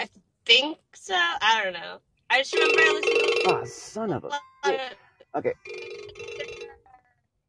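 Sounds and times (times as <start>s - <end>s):
speech: 0.5s - 6.0s
mobile phone ringtone: 2.5s - 3.9s, 5.6s - 6.8s.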